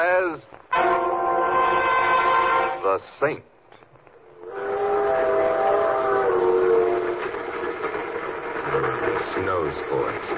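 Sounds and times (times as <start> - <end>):
speech: 0.0 - 0.9, 3.0 - 3.5, 9.2 - 10.3
steam train whistle blowing a sustained chord: 0.7 - 2.9, 4.4 - 7.8
steady rumble of a moving train: 0.7 - 3.2, 4.2 - 10.3.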